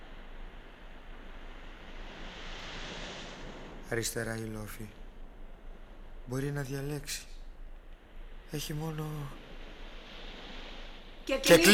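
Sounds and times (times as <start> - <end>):
sea surf: 0.0 - 4.9, 8.5 - 11.7
speech: 3.9 - 5.0, 6.3 - 7.4, 8.5 - 9.4, 11.2 - 11.7.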